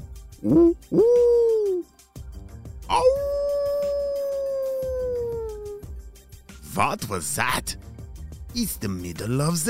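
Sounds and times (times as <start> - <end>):
speech: 0.4 - 1.2, 6.8 - 7.9, 8.6 - 9.6
wolf howling: 2.9 - 5.8.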